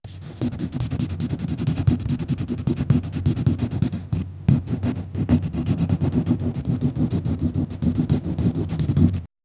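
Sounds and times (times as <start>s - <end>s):
gentle continuous crayon drawing: 0.1s - 9.3s.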